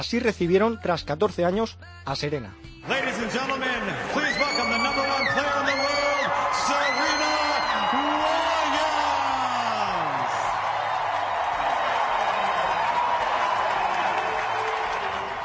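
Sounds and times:
speech: 0.0s - 5.9s
huge stadium crowd cheering in ovation: 2.9s - 15.4s
stadium crowd applause: 3.0s - 15.4s
individual shouts in stadium crowd: 4.2s - 10.4s.

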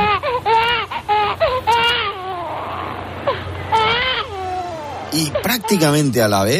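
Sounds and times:
newborn baby crying in wavering wails: 0.0s - 6.5s
speech: 5.2s - 6.5s.

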